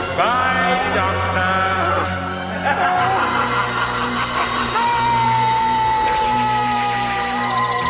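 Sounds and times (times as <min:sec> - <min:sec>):
speech: 0:00.2 - 0:01.5
laughter: 0:01.8 - 0:07.8
man shouting while sinking into mud: 0:04.8 - 0:07.8.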